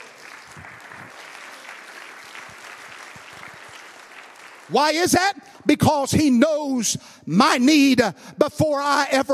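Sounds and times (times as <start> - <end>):
audience clapping hands: 0.0 - 5.7
speech: 4.7 - 9.3.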